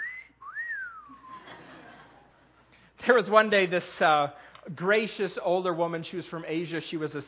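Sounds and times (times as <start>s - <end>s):
person whistling in imitation of a pet bird: 0.0s - 1.5s
laughter: 1.1s - 2.5s
speech: 3.0s - 7.2s.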